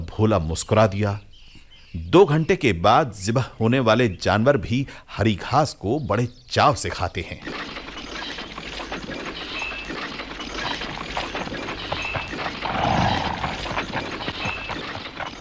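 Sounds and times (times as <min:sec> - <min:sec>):
speech: 0:00.2 - 0:01.3, 0:01.9 - 0:07.8
busy rustling background: 0:06.8 - 0:15.3
horse hooves clip-clopping: 0:07.4 - 0:15.3.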